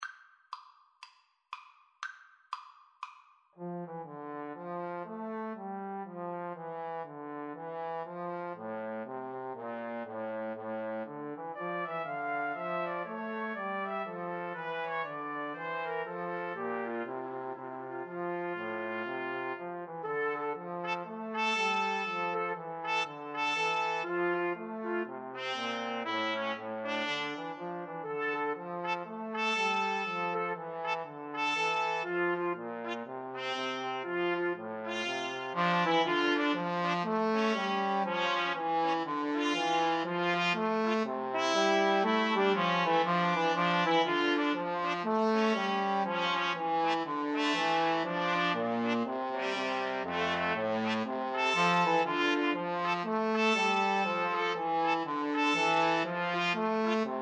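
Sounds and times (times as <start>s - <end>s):
trombone: 3.6s - 57.2s
2 trumpets: 18.4s - 57.1s.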